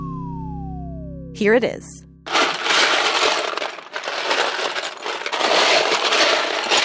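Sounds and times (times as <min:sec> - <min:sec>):
speech: 0:01.4 - 0:02.1
plastic Lego bricks clattering as a hand rummages through a pile: 0:02.3 - 0:06.8.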